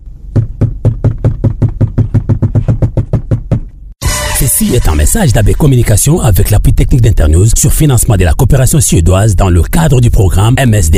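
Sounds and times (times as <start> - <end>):
loud knocking on a door: 0.3 - 3.8
speech: 4.6 - 10.9.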